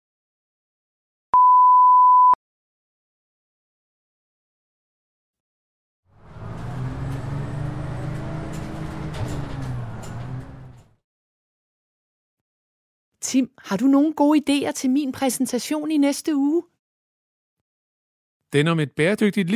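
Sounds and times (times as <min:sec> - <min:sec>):
electronic beep: 0:01.4 - 0:02.4
bus engine rumble and road noise inside a bus riding home from school: 0:06.2 - 0:11.0
speech: 0:13.3 - 0:16.7, 0:18.5 - 0:19.5.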